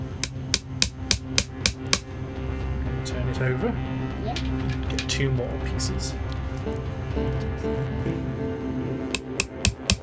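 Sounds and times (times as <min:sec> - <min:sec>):
low hum: 0:00.0 - 0:10.0
hammering on a piece with metallic cracks: 0:00.2 - 0:02.1, 0:09.2 - 0:10.0
speech: 0:03.4 - 0:08.6.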